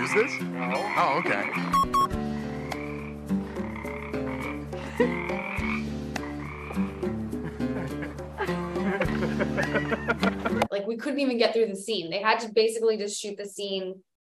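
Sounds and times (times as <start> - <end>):
dense chorus of frogs croaking loudly in Malibu: 0.0 - 7.4
speech: 0.1 - 2.1, 9.9 - 14.1
laughter: 7.4 - 10.7.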